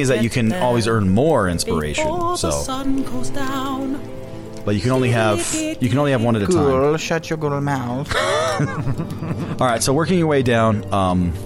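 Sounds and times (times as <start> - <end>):
light rain patter: 0.0 - 11.4
speech: 0.0 - 11.4
person vocalizing without clear words: 6.4 - 7.0
laughter: 8.1 - 9.8.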